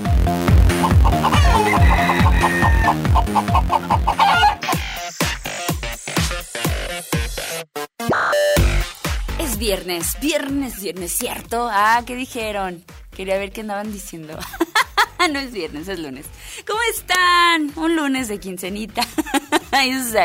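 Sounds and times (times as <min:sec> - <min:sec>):
loud musical beat: 0:00.0 - 0:11.6
rooster crowing and clucking: 0:00.8 - 0:04.8
speech: 0:09.8 - 0:14.6, 0:15.2 - 0:20.2
laughter: 0:14.4 - 0:15.3, 0:19.0 - 0:19.8.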